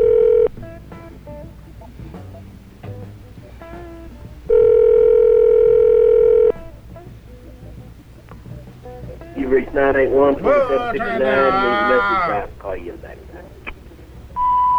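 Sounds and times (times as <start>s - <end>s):
ringback tone over a phone line: 0.0s - 1.9s, 3.6s - 7.0s, 14.4s - 14.7s
quiet phone line noise: 0.0s - 14.7s
laughter: 9.0s - 14.4s
speech: 9.8s - 13.3s.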